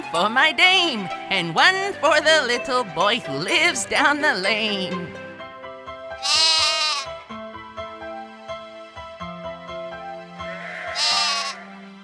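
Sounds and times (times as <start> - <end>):
soft steady instrumental melody: 0.0 - 12.0
speech: 0.1 - 5.2, 6.2 - 6.4
sheep bleating: 6.2 - 7.2, 10.4 - 11.8.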